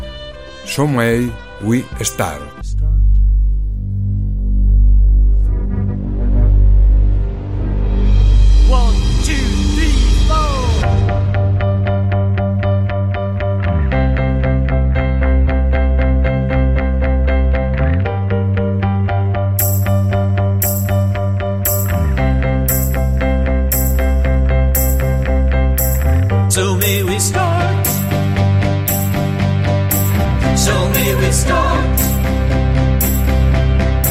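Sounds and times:
speech: 0.7s - 2.9s
driving bass line: 2.5s - 34.0s
steady drums: 7.8s - 11.6s, 19.6s - 24.2s, 26.8s - 34.0s
full-band pop rock track: 8.6s - 12.8s, 19.6s - 34.0s
bright rhythmic cymbal hits: 19.6s - 21.1s, 21.7s - 24.2s, 24.8s - 25.2s, 28.9s - 30.4s, 32.0s - 34.0s.

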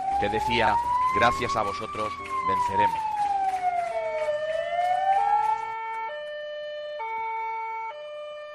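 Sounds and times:
low road rumble: 0.0s - 6.0s
several emergency vehicle sirens wailing: 0.0s - 8.5s
speech: 0.2s - 3.1s.

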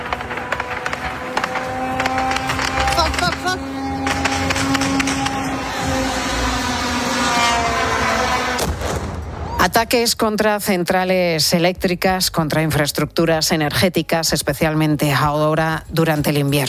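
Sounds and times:
military drones flying overhead with droning engine buzz: 0.0s - 9.4s
rough noisy outdoor background: 0.0s - 16.6s
speech: 9.6s - 16.6s.

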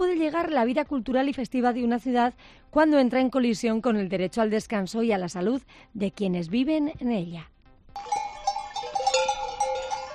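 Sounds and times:
speech: 0.0s - 8.2s
latxa sheep flock bells clanking and jingling: 8.0s - 10.1s.

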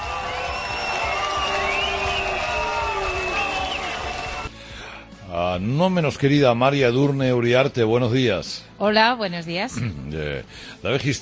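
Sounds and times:
large crowd booing and jeering at a memorial tribute in Nice France: 0.0s - 4.5s
whistles: 0.0s - 4.5s
speech: 5.6s - 11.1s.

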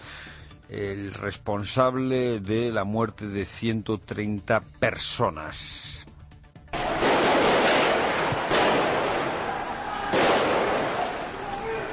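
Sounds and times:
speech: 0.7s - 5.9s
loud gunshots during a police raid: 6.8s - 11.4s.

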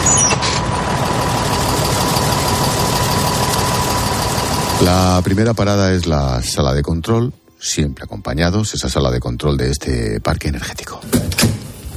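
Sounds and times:
vehicle engine running while driving around an energy park: 0.0s - 5.6s
speech: 4.8s - 11.5s.

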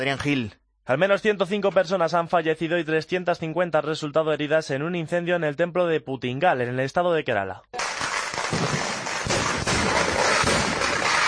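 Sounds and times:
speech: 0.0s - 7.8s
fireworks at the closing of an Indian New Year temple festival in Kerala: 7.8s - 11.2s.

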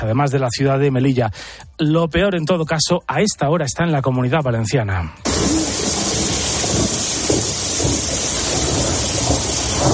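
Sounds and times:
speech: 0.0s - 6.0s
deep thunder rumbling in Castellón and Valencia in Spain: 5.3s - 9.9s
heavy rain in the provinces of Castellón and Valencia in Spain: 5.3s - 9.9s.

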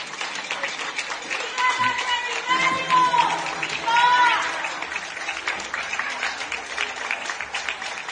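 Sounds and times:
many people applauding from balconies for health workers: 0.0s - 8.1s
cheering voices: 1.4s - 6.9s.

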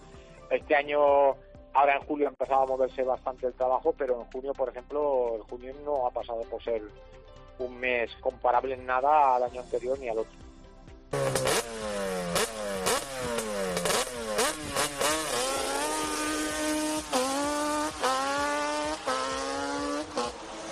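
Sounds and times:
speech: 0.7s - 10.4s
quad or off-road motorbike engine revving: 11.1s - 20.7s.

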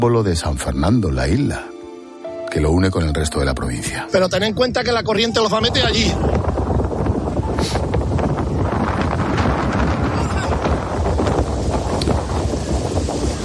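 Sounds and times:
speech: 0.0s - 1.7s, 2.5s - 6.7s
strong wind buffeting the microphone: 4.4s - 13.4s
powerful engine of black rigid inflatable speedboat approaching at full speed against the tide: 4.9s - 13.4s.

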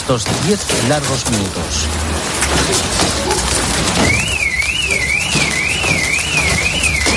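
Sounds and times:
heavy hail clattering in La Bisbal d'Empordà Girona Spain: 0.0s - 7.1s
speech: 0.1s - 4.3s
car alarm set off by hail, warbling: 2.8s - 7.1s.

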